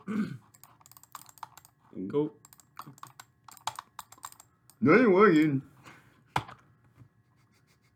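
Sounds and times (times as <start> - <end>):
computer keyboard key clicks: 0.5 - 1.8, 2.4 - 4.5
speech: 2.1 - 2.4, 4.8 - 5.7.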